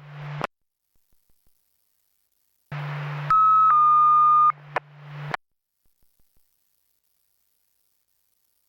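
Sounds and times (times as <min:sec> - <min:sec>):
radio channel hum: 0:00.0 - 0:00.5, 0:02.7 - 0:05.4.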